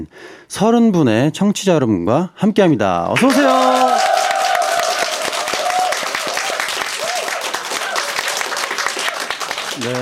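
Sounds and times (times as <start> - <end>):
speech: 0.0 - 4.1, 9.8 - 10.0
studio audience applauding at an open-studio event: 3.2 - 10.0.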